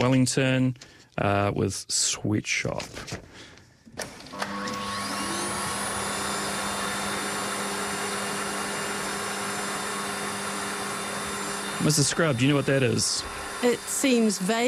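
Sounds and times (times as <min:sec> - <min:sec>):
speech: 0:00.0 - 0:04.1, 0:11.8 - 0:14.6
vacuum cleaner whirring: 0:04.0 - 0:14.6.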